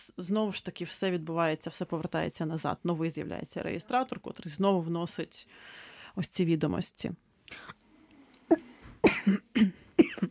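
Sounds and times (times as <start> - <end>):
speech: 0.0 - 7.8, 8.5 - 9.8
person coughing harshly: 8.5 - 10.2.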